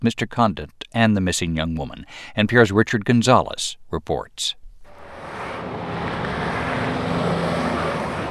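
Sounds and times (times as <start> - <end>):
speech: 0.0 - 4.6
heavy trucks carrying fruits and vegetables roaring past on a highway: 4.9 - 8.2.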